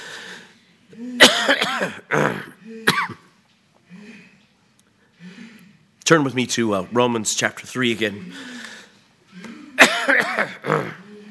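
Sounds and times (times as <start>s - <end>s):
preacher breathing: 0.0s - 1.2s, 3.9s - 5.9s, 8.2s - 9.8s
preacher's throat noises: 0.9s - 4.4s, 9.3s - 11.2s
preacher coughing during a sermon: 1.0s - 3.4s, 9.5s - 11.1s
speech: 1.8s - 3.3s, 6.1s - 8.6s.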